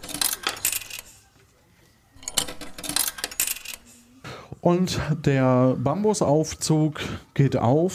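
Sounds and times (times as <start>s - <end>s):
metal tokens clinking and rattling into a coin machine: 0.0s - 1.2s, 2.2s - 4.0s
speech: 4.6s - 7.9s.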